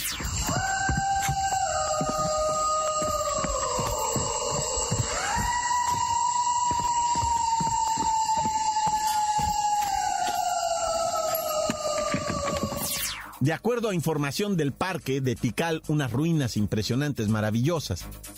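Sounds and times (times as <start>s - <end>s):
unidentified animal wailing howl in jungle: 0.1s - 13.0s
speech: 13.4s - 18.3s.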